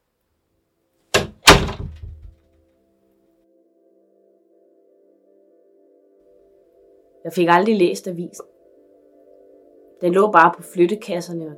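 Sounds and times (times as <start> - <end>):
door pulled shut with click and thud: 1.1 - 2.4
speech: 7.2 - 8.5, 10.0 - 11.5.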